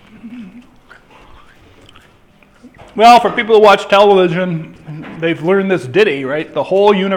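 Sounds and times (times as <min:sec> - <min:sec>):
person chewing with crisp crunching: 0:00.0 - 0:02.8
faint murmuring breath: 0:00.3 - 0:02.7
speech: 0:03.0 - 0:07.1.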